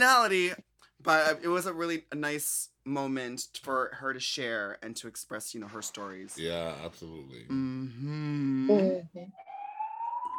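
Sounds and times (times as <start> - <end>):
speech: 0.0 - 9.5
police siren wail: 9.4 - 10.3.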